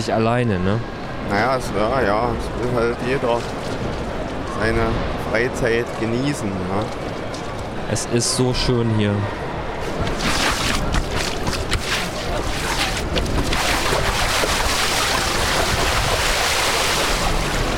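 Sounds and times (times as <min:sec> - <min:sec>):
speech: 0:00.0 - 0:03.9, 0:04.6 - 0:07.2, 0:07.9 - 0:10.3
water splashing and sloshing: 0:09.7 - 0:17.7.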